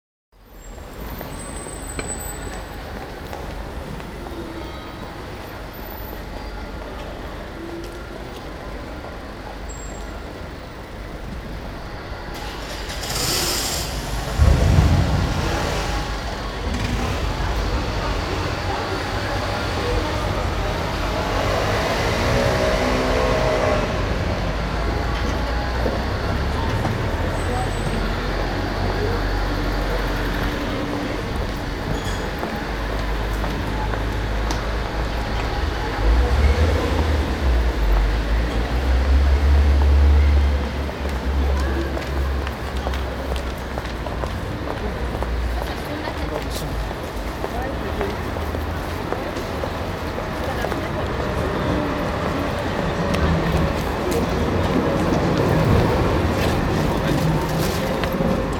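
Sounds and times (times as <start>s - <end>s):
tram in public space: 0.4s - 58.5s.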